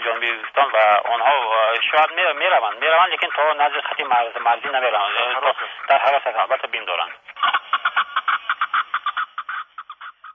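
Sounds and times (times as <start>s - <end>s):
chukar partridge calling in throaty clucking notes: 0.0s - 10.3s
speech: 0.3s - 7.6s.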